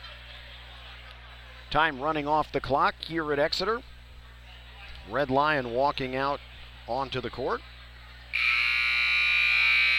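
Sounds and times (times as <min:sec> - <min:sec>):
speech: 0:01.7 - 0:03.9, 0:05.1 - 0:07.7
loud electronic buzzer at a high school boys basketball game: 0:08.3 - 0:09.9.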